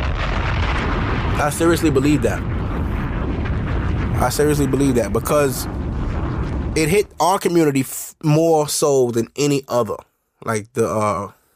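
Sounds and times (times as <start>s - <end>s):
bomb explosion sound effect: 0.0s - 8.0s
speech: 1.4s - 2.6s, 4.2s - 5.8s, 6.8s - 11.4s.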